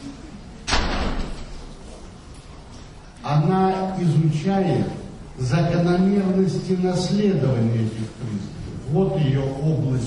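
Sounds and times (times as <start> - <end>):
door shutting with a loud thud and rumbling decay: 0.6 - 1.6
speech: 3.2 - 10.0.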